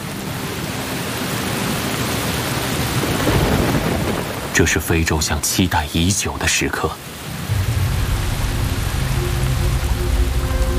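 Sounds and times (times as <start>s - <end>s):
heavy downpour rain: 0.0s - 10.7s
speech: 4.6s - 7.1s
low rumble: 7.4s - 10.7s.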